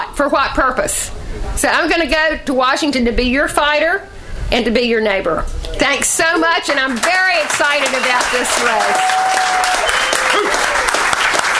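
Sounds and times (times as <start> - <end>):
speech: 0.2 - 10.8
enthusiastic crowd applauding after a campaign speech: 6.6 - 11.5.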